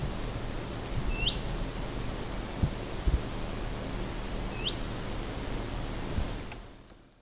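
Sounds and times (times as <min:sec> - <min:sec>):
low background hiss: 0:00.0 - 0:07.1
willow warbler rising whistled calls: 0:01.1 - 0:01.5, 0:04.5 - 0:04.8.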